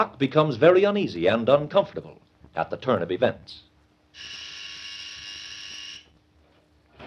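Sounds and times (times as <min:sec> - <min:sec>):
speech: 0:00.0 - 0:04.4
low room hum: 0:00.0 - 0:07.0
hospital call buzzer held down: 0:04.2 - 0:06.1.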